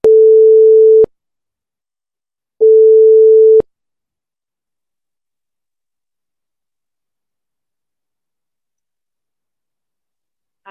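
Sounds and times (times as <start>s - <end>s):
telephone line ringing tone during an outgoing call: 0.0s - 1.1s, 2.6s - 3.6s.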